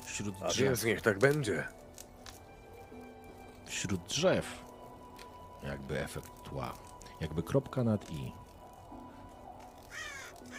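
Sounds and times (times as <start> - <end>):
soft outdoor background: 0.0 - 10.5
speech: 0.2 - 1.8, 3.8 - 4.6, 5.6 - 8.4
ravens croaking: 8.4 - 10.5.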